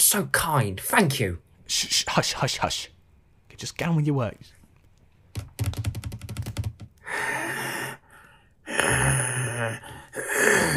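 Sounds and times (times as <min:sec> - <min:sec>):
speech: 0:00.0 - 0:03.0, 0:03.6 - 0:04.6, 0:05.4 - 0:05.6
keys tapping: 0:05.3 - 0:07.0
heavy breathing: 0:07.0 - 0:10.7.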